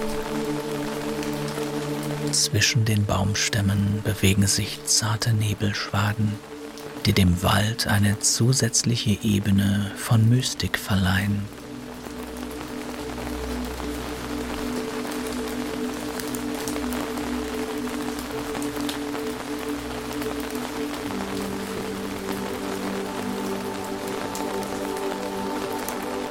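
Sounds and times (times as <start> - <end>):
rain falling in a misty forest: 0.0 - 26.2
speech: 2.4 - 11.6.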